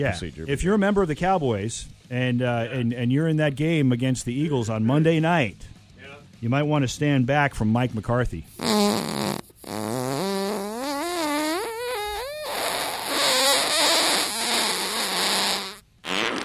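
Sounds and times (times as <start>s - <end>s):
speech: 0.0s - 5.7s, 6.4s - 8.9s
comic fart sound effect: 8.5s - 16.4s.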